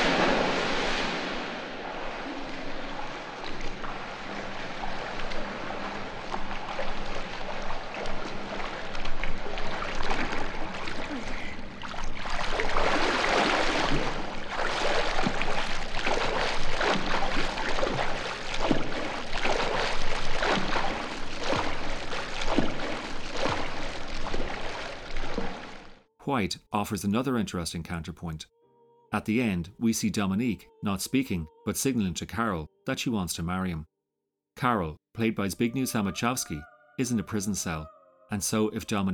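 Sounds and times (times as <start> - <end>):
water splashing and sloshing: 0.0 - 26.1
speech: 26.8 - 33.9, 34.6 - 39.1.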